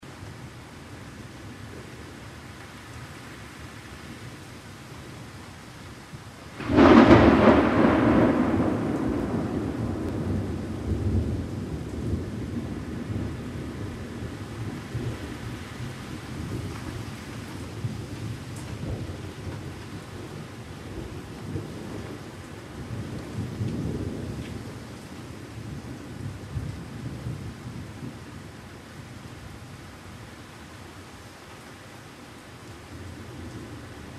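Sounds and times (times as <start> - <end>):
thunder: 6.6 - 24.9.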